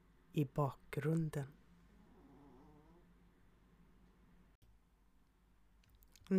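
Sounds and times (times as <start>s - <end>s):
speech: 0.4s - 1.6s
two small chihuahuas snoring softly in a bed at home: 1.9s - 3.2s.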